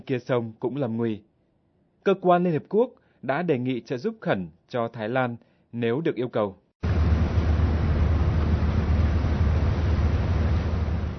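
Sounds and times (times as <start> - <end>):
speech: 0.0 - 1.3, 2.0 - 6.6
grey metal patrol boat engine idling at a canal pier: 6.8 - 11.1.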